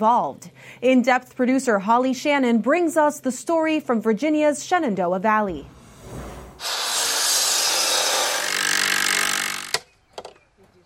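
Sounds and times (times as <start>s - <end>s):
speech: 0.0s - 5.8s
saw cutting through wood at a busy construction site: 6.6s - 9.8s
sharp knocks and taps: 9.7s - 10.8s.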